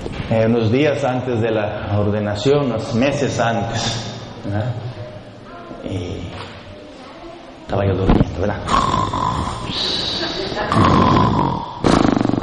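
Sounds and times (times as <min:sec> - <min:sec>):
speech: 0:00.3 - 0:04.9, 0:07.7 - 0:09.1
person imitating snoring with their voice: 0:08.7 - 0:12.4.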